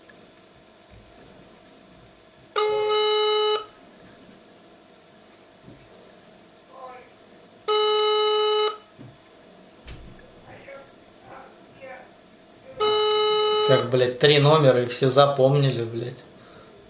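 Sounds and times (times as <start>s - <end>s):
telephone ringback tone while a number is dialled: 2.6s - 3.7s, 7.7s - 8.9s, 12.8s - 13.9s
speech: 13.8s - 16.3s.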